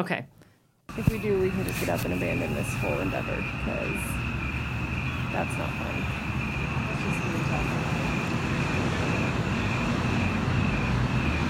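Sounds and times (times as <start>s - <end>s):
speech: 0.0s - 4.3s, 5.3s - 6.3s, 7.0s - 8.0s
steady roar of passing cars on a nearby road: 0.9s - 11.4s.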